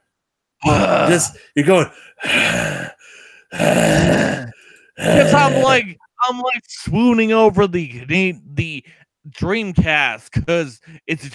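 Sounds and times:
voice imitating heavy breathing into a microphone: 0.6s - 5.8s
speech: 1.1s - 2.9s, 3.5s - 4.4s, 5.0s - 11.3s.

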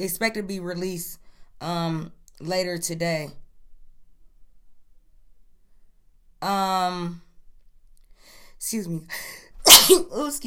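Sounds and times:
speech: 0.0s - 3.4s, 6.4s - 7.3s, 8.6s - 10.4s
person sneezing: 9.6s - 10.2s.

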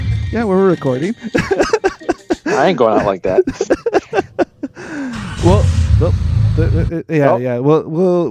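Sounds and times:
speech: 0.3s - 4.0s, 4.8s - 8.3s
laughter: 1.0s - 5.7s, 6.6s - 7.0s
old car engine idling: 4.0s - 6.9s.

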